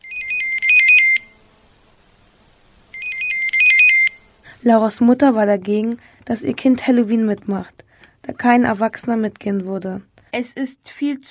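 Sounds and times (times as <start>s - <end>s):
telephone ringing with an electronic warbling tone: 0.0s - 1.4s, 2.9s - 4.2s
speech: 4.6s - 11.2s.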